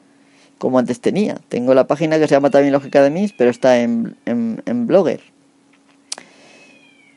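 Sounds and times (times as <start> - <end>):
low steady hum: 0.0 - 7.1
speech: 0.6 - 5.4
cats meowing and caterwauling outdoors: 2.2 - 4.5, 6.6 - 7.1.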